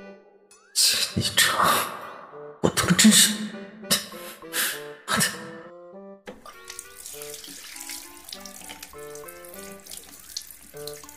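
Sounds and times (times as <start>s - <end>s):
music with distinct sustained notes: 0.0s - 11.1s
speech: 0.8s - 1.9s, 3.0s - 4.0s
water running from a tap while washing hands: 6.3s - 11.1s.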